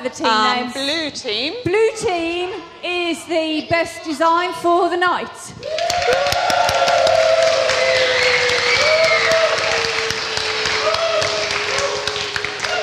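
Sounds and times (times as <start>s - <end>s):
speech: 0.0s - 6.9s
cheers and whoops: 5.6s - 12.8s
crowd clapping: 5.6s - 12.8s.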